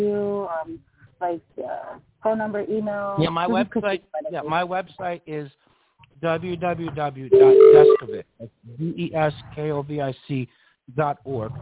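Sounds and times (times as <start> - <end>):
speech: 0.0 - 5.6, 6.2 - 11.6
electronic chime during a call: 7.3 - 8.2.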